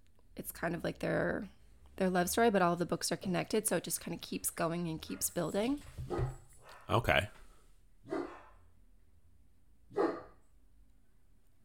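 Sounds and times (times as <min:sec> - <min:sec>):
speech: 0:00.4 - 0:07.4
dog barks: 0:06.0 - 0:07.0, 0:08.1 - 0:08.6, 0:09.9 - 0:10.4.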